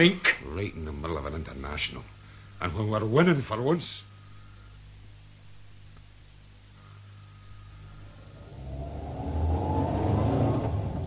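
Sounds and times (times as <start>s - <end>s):
speech: 0.0s - 4.1s
duty car engine revving and accelerating: 7.9s - 11.0s.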